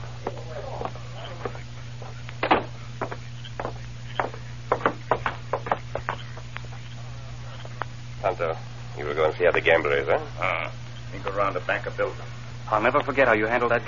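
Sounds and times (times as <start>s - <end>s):
low steady hum: 0.0s - 13.8s
knocking on a wooden door: 2.4s - 6.2s
speech: 8.4s - 13.8s.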